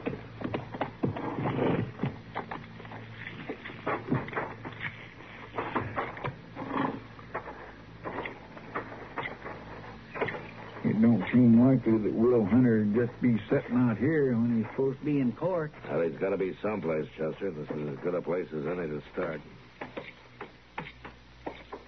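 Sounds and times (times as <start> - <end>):
horses' hooves clip-clopping: 0.0 - 11.5
speech: 11.0 - 19.6.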